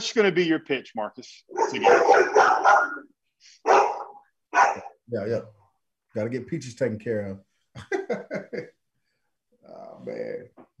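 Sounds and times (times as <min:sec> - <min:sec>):
speech: 0:00.0 - 0:08.8, 0:09.6 - 0:10.7
dog barking: 0:01.5 - 0:05.0
laughter: 0:07.8 - 0:08.8.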